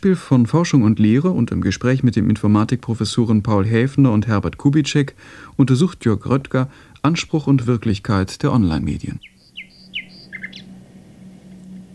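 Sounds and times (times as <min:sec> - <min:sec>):
speech: 0:00.0 - 0:09.3
steady low hum: 0:00.0 - 0:11.9
nightingale chirps and trills played from a PC over a telephone line: 0:09.2 - 0:10.8.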